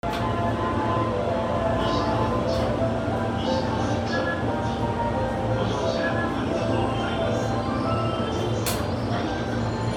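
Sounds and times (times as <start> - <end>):
JR Keihin-Tohoku Line train sounds: 0.0 - 9.9.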